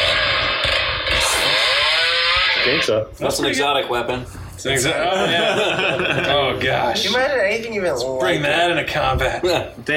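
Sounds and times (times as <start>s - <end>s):
chainsaw engine revving: 0.0s - 2.8s
speech: 2.6s - 9.9s
laughter: 5.0s - 6.8s.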